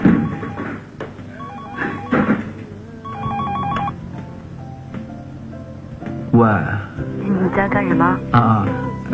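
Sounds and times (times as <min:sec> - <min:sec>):
electronic ringtone of an outgoing telephone call: 0:00.0 - 0:04.0
speech: 0:06.4 - 0:09.1.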